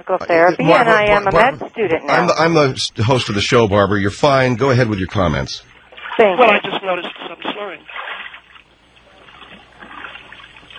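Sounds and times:
speech: 0:00.0 - 0:07.2
water sloshing and splashing in a bathtub: 0:04.6 - 0:10.7.

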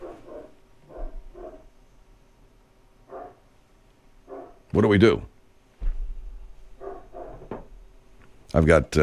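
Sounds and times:
dog barking: 0:00.0 - 0:01.7, 0:03.0 - 0:03.5, 0:04.2 - 0:04.7, 0:06.8 - 0:07.7
speech: 0:04.7 - 0:05.3, 0:08.6 - 0:09.0.

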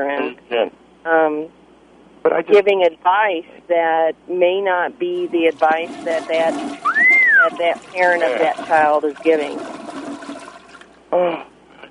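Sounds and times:
speech: 0:00.0 - 0:01.6, 0:02.2 - 0:09.8, 0:11.1 - 0:11.5
toilet flushing heard over a phone line: 0:05.1 - 0:11.0.

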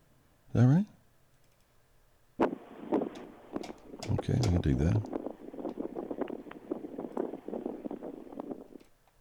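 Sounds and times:
speech: 0:00.6 - 0:00.9, 0:04.3 - 0:05.2
blustery wind sound effect: 0:02.4 - 0:09.1.

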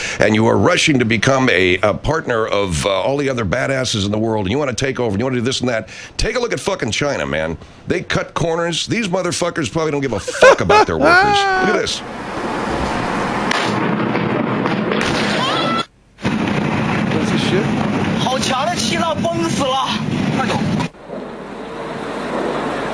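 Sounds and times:
speech: 0:00.2 - 0:12.5
laughter: 0:10.1 - 0:12.0
wind-like distortion on a phone recording: 0:10.7 - 0:22.9
industrial explosion roaring rumble in China: 0:12.0 - 0:15.5, 0:16.2 - 0:22.9.

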